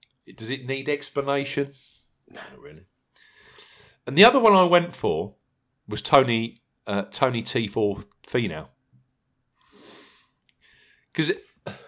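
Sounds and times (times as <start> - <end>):
speech: 0.3 - 2.9, 4.0 - 8.8, 11.2 - 11.8
breathy inhale: 3.2 - 4.0, 9.6 - 11.1
sharp coughs: 11.6 - 11.8.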